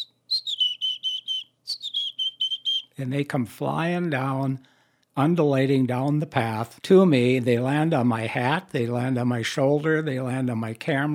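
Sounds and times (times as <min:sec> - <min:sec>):
person whistling an imitation of a chickadee song: 0:00.0 - 0:03.0
speech: 0:03.0 - 0:11.1.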